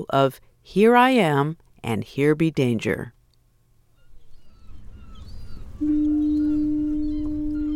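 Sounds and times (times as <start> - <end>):
speech: 0.0 - 3.2
low rumbling wind or sea noise: 3.5 - 7.7
faint bird calls: 3.9 - 7.7
deep loud foghorn blast: 5.6 - 7.7.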